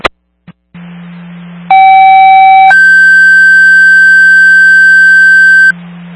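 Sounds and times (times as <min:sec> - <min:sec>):
low fire dispatch radio hum: 0:00.0 - 0:06.1
fire dispatch radio alert tones: 0:01.7 - 0:05.7.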